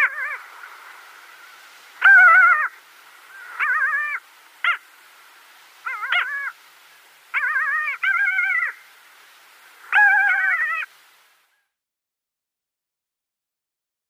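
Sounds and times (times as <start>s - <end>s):
pair of Pomarine skuas calling at their nest: 0.0s - 5.0s, 5.8s - 9.0s, 9.7s - 10.9s.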